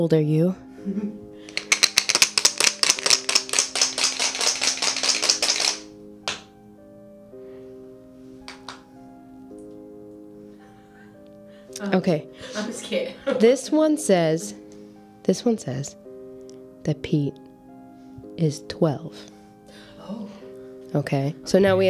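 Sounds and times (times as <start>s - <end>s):
speech: 0.0s - 1.6s, 11.8s - 14.6s, 15.2s - 16.0s, 16.8s - 17.5s, 18.4s - 19.4s, 20.1s - 21.8s
four dice rattling inside a container: 1.5s - 6.4s
laughter: 12.4s - 13.6s.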